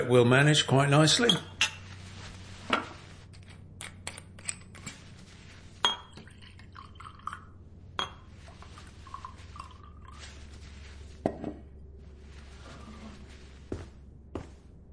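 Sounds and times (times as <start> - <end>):
low hum: 0.0 - 14.9
speech: 0.1 - 1.5
glassy clinks: 5.8 - 6.3
scotch poured into a glass: 5.8 - 11.0.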